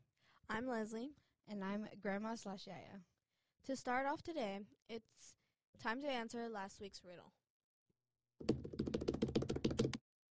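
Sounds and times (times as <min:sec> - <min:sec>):
speech: 0:00.5 - 0:07.4
rapid computer keyboard typing with crisp key clicks: 0:08.4 - 0:10.0.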